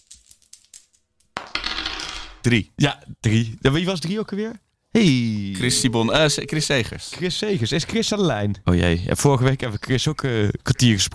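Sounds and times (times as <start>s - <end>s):
die rolling across a hard tabletop: 1.4s - 2.4s
speech: 2.4s - 11.1s.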